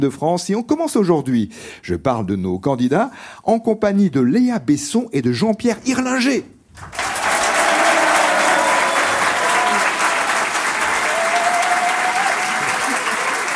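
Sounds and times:
speech: 0:00.0 - 0:07.0
large audience applauding in a reverberant hall: 0:06.8 - 0:13.5
faint cheering: 0:07.0 - 0:13.5.

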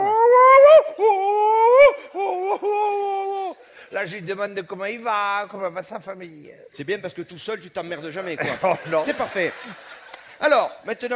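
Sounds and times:
wolf howling and whimpering: 0:00.0 - 0:03.5
speech: 0:04.0 - 0:11.1
laughter: 0:08.3 - 0:10.7.

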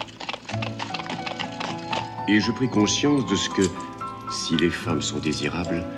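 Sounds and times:
horse whinnying: 0:00.0 - 0:04.0
horse hooves clip-clopping as a rider sets off on horseback: 0:00.0 - 0:05.9
speech: 0:02.3 - 0:05.9.

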